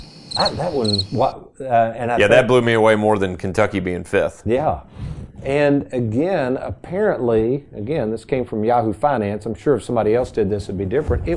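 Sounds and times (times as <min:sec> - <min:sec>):
high pulsing cricket chirps: 0:00.0 - 0:01.2
speech: 0:00.4 - 0:11.3.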